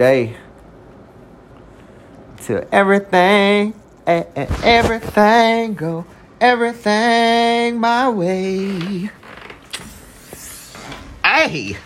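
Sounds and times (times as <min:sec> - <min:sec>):
speech: 0:00.0 - 0:00.4, 0:02.4 - 0:09.2, 0:11.4 - 0:11.8
chair creaking under shifting weight as someone nearly falls: 0:04.4 - 0:05.6, 0:08.2 - 0:11.8.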